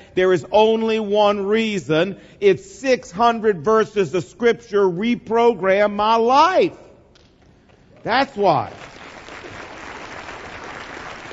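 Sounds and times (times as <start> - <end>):
speech: 0.2 - 6.8, 8.0 - 8.9
audience clapping: 7.2 - 11.3.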